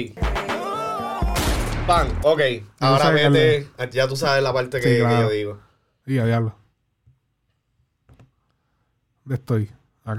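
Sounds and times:
speech: 0:00.0 - 0:00.2, 0:01.9 - 0:06.6, 0:09.3 - 0:10.1
gunshot sound effect in a music track: 0:01.3 - 0:02.2.

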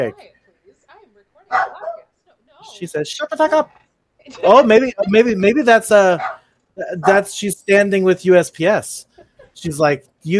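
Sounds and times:
speech: 0:00.0 - 0:00.4, 0:02.6 - 0:10.3
dog barking: 0:01.5 - 0:02.1, 0:06.2 - 0:06.4.

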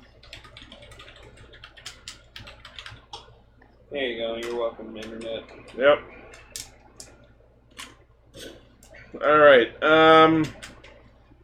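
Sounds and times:
typing on a computer keyboard: 0:00.0 - 0:03.3, 0:04.4 - 0:07.1, 0:10.4 - 0:11.0
speech: 0:03.9 - 0:06.2, 0:09.1 - 0:10.6.

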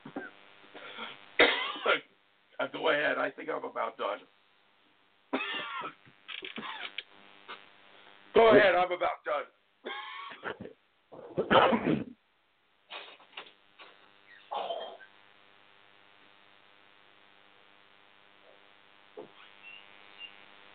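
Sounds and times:
person coughing up phlegm: 0:00.0 - 0:02.1, 0:05.3 - 0:07.0, 0:09.8 - 0:12.2, 0:14.4 - 0:15.1
steady low electrical hum: 0:00.0 - 0:20.7
speech: 0:02.0 - 0:04.4, 0:08.4 - 0:09.5.

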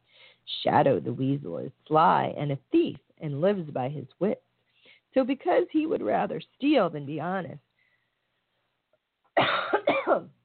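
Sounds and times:
speech: 0:00.6 - 0:04.5, 0:05.1 - 0:07.6, 0:10.1 - 0:10.4
harsh coughing: 0:09.4 - 0:10.3.

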